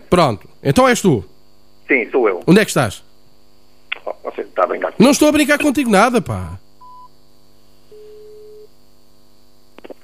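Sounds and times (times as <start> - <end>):
constant electrical hum: 0.0 - 10.0
speech: 0.1 - 1.3, 1.9 - 3.0, 4.2 - 6.6
telephone line tone as a phone call is cut off: 7.9 - 8.7.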